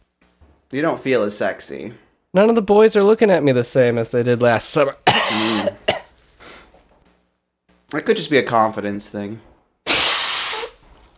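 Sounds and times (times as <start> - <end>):
speech: 0.7 - 5.6, 8.0 - 9.5
person blowing nose: 9.9 - 11.0.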